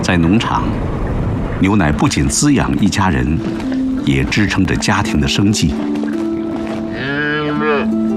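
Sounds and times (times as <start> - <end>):
speech: 0.1 - 1.0, 1.6 - 5.9
cow mooing: 6.9 - 8.0.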